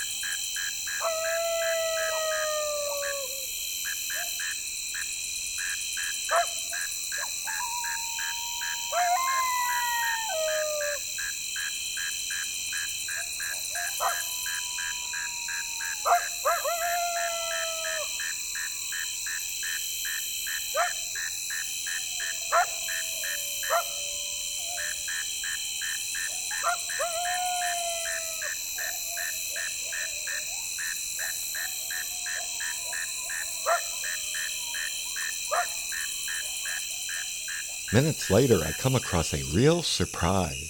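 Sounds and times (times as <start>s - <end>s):
coyotes howling and yipping on prairie: 0.0s - 4.6s, 6.2s - 38.8s
chorus of chirping insects: 0.0s - 40.6s
speech: 38.0s - 40.6s.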